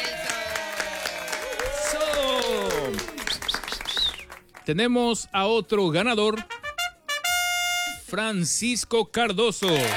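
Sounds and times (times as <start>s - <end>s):
gliding tonal cheers and whoops: 0.0s - 4.2s
scattered applause: 0.0s - 4.9s, 9.6s - 9.9s
speech: 4.7s - 6.5s, 8.1s - 9.9s.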